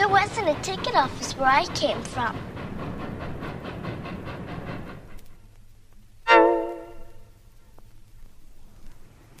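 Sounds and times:
train clattering along the rails: 0.0s - 5.6s
speech: 0.2s - 2.6s
train whistle blast: 6.3s - 7.3s.

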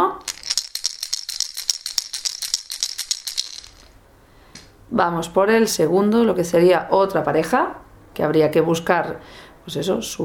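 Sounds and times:
small wooden sound-memory triangle shaken with contents rattling: 0.2s - 4.0s
speech: 4.9s - 10.2s.

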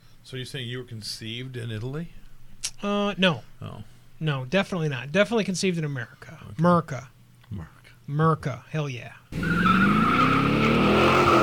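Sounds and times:
speech: 0.3s - 2.2s, 2.8s - 10.2s
1955 Chevy 210 two-door sedan engine roaring: 9.3s - 11.4s
1955 Chevy 210 two-door sedan tires skidding: 9.3s - 11.4s.

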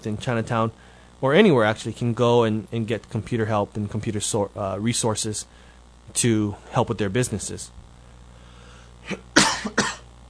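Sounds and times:
speech: 0.0s - 7.8s, 9.0s - 9.8s
dry coughs: 9.0s - 10.1s.

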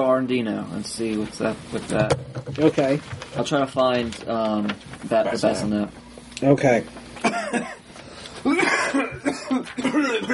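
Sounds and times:
speech: 0.0s - 7.8s, 9.5s - 10.3s
person coughing harshly: 7.2s - 7.8s, 8.4s - 10.3s.

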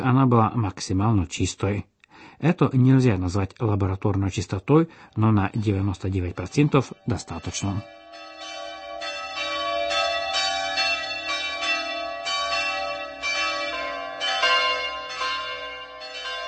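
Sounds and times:
speech: 0.0s - 8.5s
church bells ringing: 5.5s - 16.4s.

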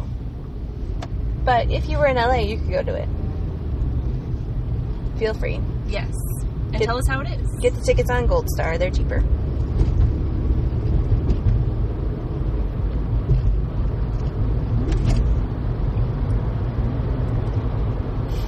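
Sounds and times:
car driving with road and engine rumble: 0.0s - 18.4s
speech: 1.5s - 3.2s, 5.2s - 9.5s.

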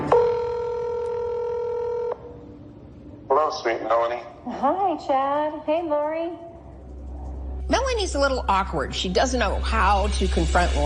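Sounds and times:
telephone dialing tones: 0.1s - 2.2s
telephone ringing tone: 0.1s - 2.6s
speech: 3.5s - 6.5s, 7.9s - 10.8s.

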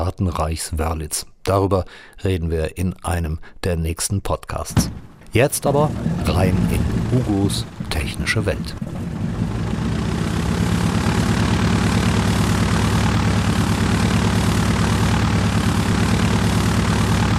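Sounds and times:
speech: 0.2s - 9.2s
Junkers Ju 52 propeller aircraft engines droning: 4.7s - 17.3s.

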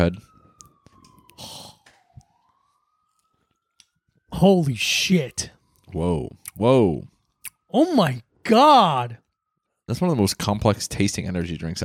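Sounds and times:
speech: 0.0s - 0.3s, 4.4s - 7.1s, 7.7s - 9.2s, 9.9s - 11.8s
emergency siren wailing: 0.0s - 11.8s
breathy sigh: 1.3s - 2.0s.

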